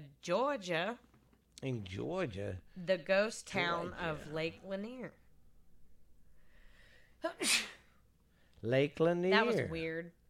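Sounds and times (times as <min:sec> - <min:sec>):
speech: 0:00.2 - 0:05.2, 0:07.2 - 0:07.7, 0:08.6 - 0:10.2
sneeze: 0:07.3 - 0:07.9.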